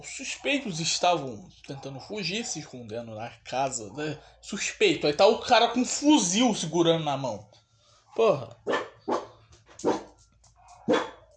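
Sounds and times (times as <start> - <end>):
speech: 0.0 - 7.6, 8.2 - 8.9
dog barking: 8.6 - 11.3.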